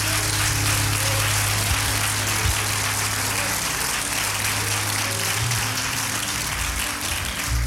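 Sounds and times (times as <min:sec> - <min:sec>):
audience clapping hands: 0:00.0 - 0:07.6.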